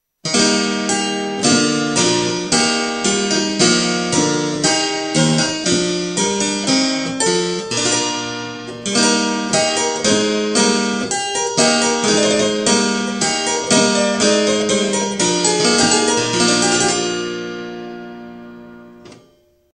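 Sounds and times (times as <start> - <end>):
spinet: 0.3 - 19.2.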